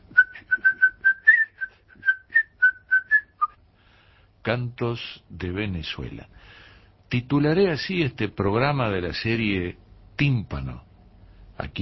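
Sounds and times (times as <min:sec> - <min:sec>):
person whistling a lively tune: 0:00.1 - 0:03.6
speech: 0:04.5 - 0:10.9, 0:11.6 - 0:11.8.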